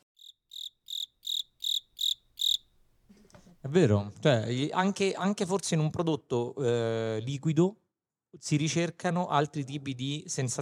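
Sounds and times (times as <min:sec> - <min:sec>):
cricket chirping: 0:00.2 - 0:02.8
speech: 0:03.6 - 0:10.5.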